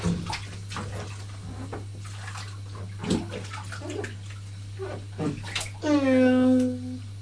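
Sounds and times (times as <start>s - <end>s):
water sloshing and splashing: 0.0s - 6.2s
steady low hum: 0.0s - 7.2s
child's high voice: 5.8s - 7.0s.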